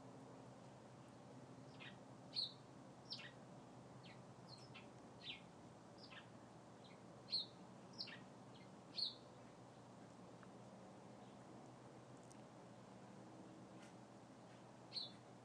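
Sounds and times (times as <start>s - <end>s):
steady low hum: 0.0s - 15.4s
bird chirping in tree branches: 1.6s - 3.4s, 4.0s - 9.9s, 14.9s - 15.3s.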